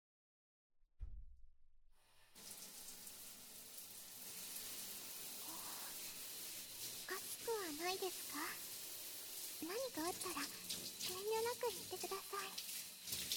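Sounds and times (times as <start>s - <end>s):
shower water spraying, pattering and splashing: 2.2s - 13.3s
speech: 7.8s - 8.6s, 9.6s - 12.7s.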